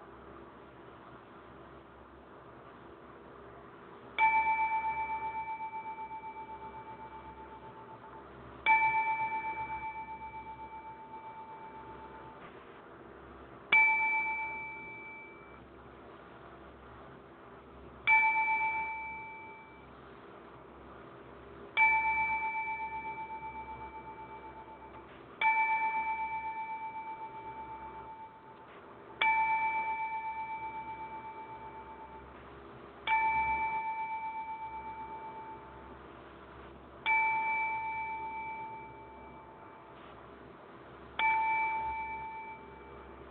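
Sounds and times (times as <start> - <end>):
bell striking with clear dings: 4.2 - 12.4, 13.7 - 15.6, 18.1 - 19.9, 21.8 - 28.6, 29.2 - 32.4, 33.0 - 36.0, 37.0 - 40.0, 41.2 - 43.3.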